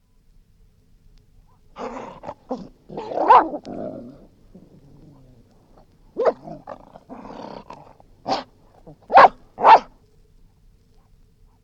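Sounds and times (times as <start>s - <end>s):
dogs snarling angrily and barking: 1.8s - 9.9s.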